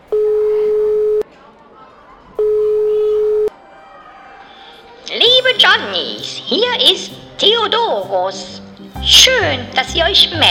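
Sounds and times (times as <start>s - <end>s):
ringback tones of an outgoing phone call: 0.0s - 1.2s, 2.4s - 3.5s
speech: 5.8s - 10.5s.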